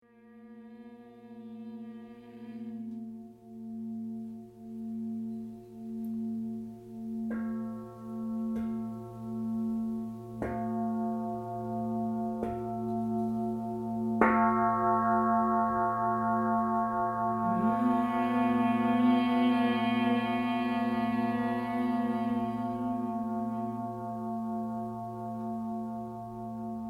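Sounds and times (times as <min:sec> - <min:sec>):
singing bowl: 0:00.0 - 0:26.8
person singing: 0:17.3 - 0:24.7.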